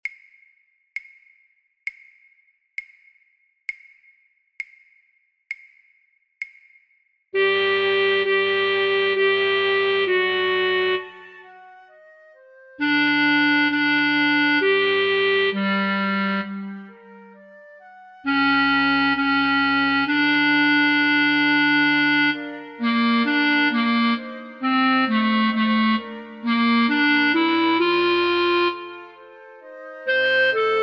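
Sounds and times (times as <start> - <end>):
alto flute playing a sacred piece: 7.4 - 30.8.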